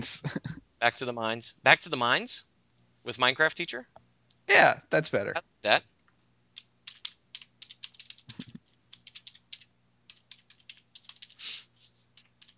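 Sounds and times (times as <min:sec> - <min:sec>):
speech: 0:00.0 - 0:05.9
faint steady hum: 0:00.0 - 0:12.5
computer keyboard typing: 0:06.6 - 0:12.5.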